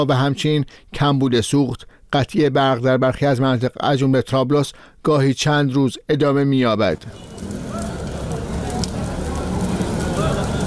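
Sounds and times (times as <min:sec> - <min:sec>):
speech: 0:00.0 - 0:07.6
tires set on fire by protesters crackling in Lebanon: 0:06.9 - 0:10.6
faint indistinct voices: 0:07.2 - 0:10.6.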